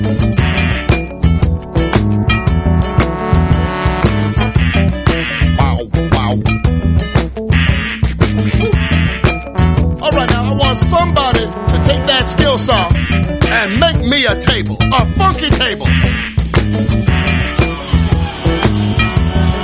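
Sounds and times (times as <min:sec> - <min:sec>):
loud driving rhythmic music: 0:00.0 - 0:19.6
duck call quacking: 0:00.4 - 0:01.0, 0:04.2 - 0:06.4, 0:07.5 - 0:09.5, 0:11.5 - 0:14.3, 0:15.6 - 0:18.9
excited voice exclaiming: 0:05.4 - 0:06.4, 0:08.6 - 0:08.8, 0:11.8 - 0:14.2.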